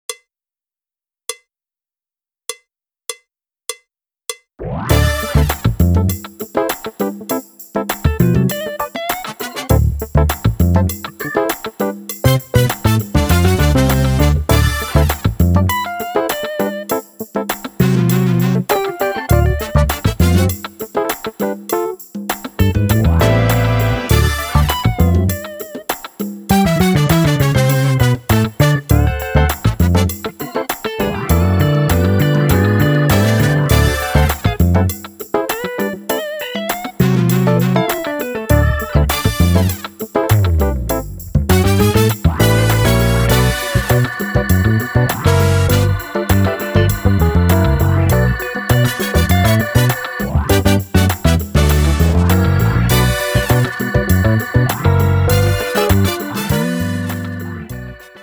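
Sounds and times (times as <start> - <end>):
drumless funk music: 4.6 - 58.2.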